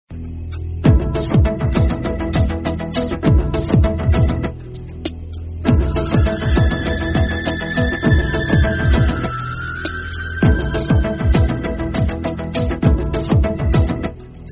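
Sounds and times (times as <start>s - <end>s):
night time background music tone ringtone: 0.1s - 14.5s.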